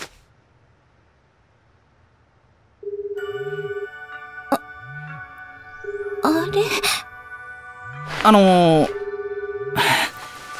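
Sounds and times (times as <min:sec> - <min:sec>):
phone ringtone with electronic tone and rhythmic melody: 0:02.8 - 0:10.2
speech: 0:06.2 - 0:07.0, 0:08.2 - 0:09.0.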